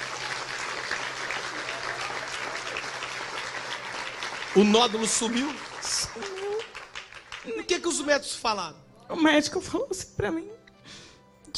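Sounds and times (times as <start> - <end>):
large crowd applauding: 0.0 - 8.0
speech: 4.6 - 6.3, 7.7 - 10.6.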